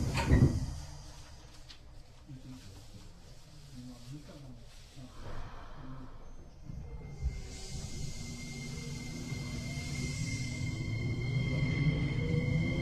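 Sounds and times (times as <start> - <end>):
train doors sliding shut with a pneumatic hiss: 0.0 - 1.2, 7.2 - 11.0
low rumble of a train starting to move: 0.0 - 1.6, 5.3 - 12.8.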